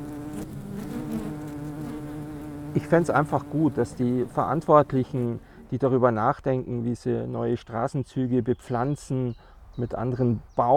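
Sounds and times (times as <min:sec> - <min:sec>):
beekeeper's honeybees buzzing in a city: 0:00.0 - 0:06.0
speech: 0:02.8 - 0:10.7.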